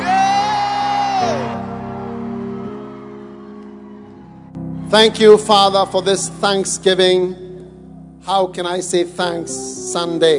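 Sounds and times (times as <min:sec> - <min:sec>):
church audience shouting and screaming praise: 0:00.0 - 0:06.3
speech: 0:04.9 - 0:07.4, 0:08.2 - 0:10.3.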